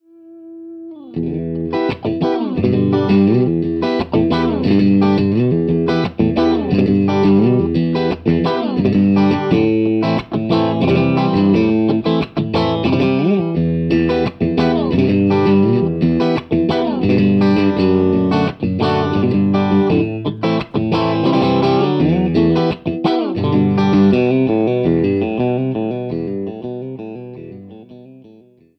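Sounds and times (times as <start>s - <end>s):
Fender Stratocaster electric guitar through Blitz 50 amplifier head: 0.0s - 28.5s.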